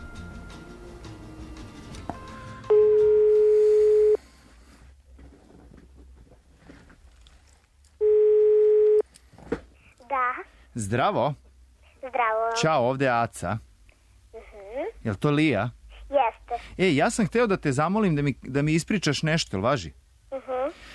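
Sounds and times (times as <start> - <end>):
telephone ringing tone on a call being placed: 2.2 - 4.2, 8.0 - 9.0
speech: 10.8 - 11.4, 12.2 - 13.7, 15.0 - 15.8, 16.8 - 20.0.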